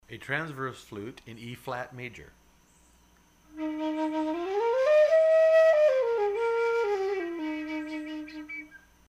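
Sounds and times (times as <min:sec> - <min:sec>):
flute note in E flat: 0:03.5 - 0:08.8.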